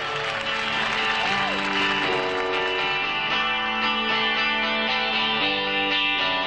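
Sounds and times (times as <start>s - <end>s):
live concert crowd cheering and roaring: 0.0s - 3.5s
distorted electric guitar playing a repeating riff: 0.0s - 6.4s.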